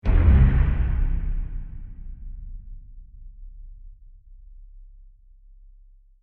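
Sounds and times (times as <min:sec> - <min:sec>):
ominous sci-fi trailer impact: 0:00.0 - 0:04.0.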